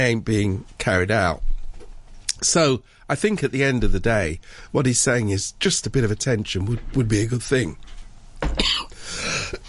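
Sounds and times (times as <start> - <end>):
speech: 0.0 - 1.5, 2.4 - 8.7
person coughing harshly and spluttering: 8.5 - 9.6.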